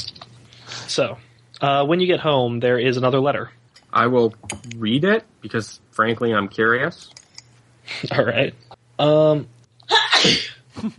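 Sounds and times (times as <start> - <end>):
speech: 0.9 - 7.2, 7.9 - 10.9
person sneezing: 9.9 - 10.6.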